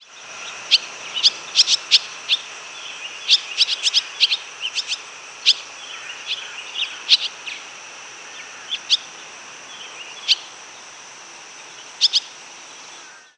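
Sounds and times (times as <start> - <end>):
swallow chirping: 0.0 - 11.0, 11.6 - 12.4
steady hiss: 0.0 - 13.3.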